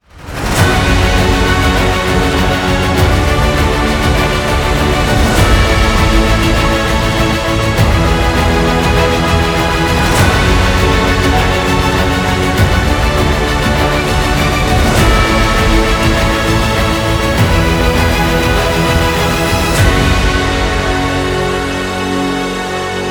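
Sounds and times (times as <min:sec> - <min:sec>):
epic hybrid orchestral music: 0:00.0 - 0:23.1.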